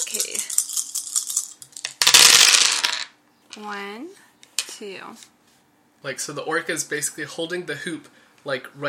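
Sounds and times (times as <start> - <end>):
speech: 0.0 - 0.4, 3.6 - 5.4, 6.0 - 8.8
dice rolling and clattering across a hard surface: 0.0 - 3.1.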